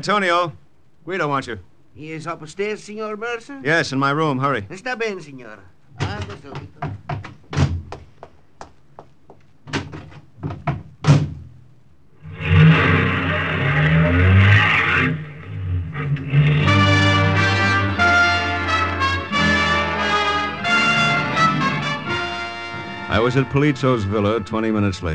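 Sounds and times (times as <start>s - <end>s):
speech: 0.0s - 6.9s, 23.3s - 25.1s
car engine pulling away: 12.3s - 18.2s
music: 16.5s - 25.1s.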